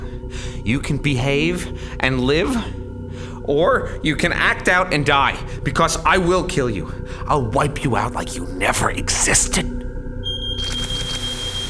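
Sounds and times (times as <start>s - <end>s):
speech: 0.6s - 2.8s, 3.5s - 9.8s
building fire alarm blaring a high-pitched tone: 10.2s - 11.6s
noisy hissing commotion: 10.6s - 11.6s.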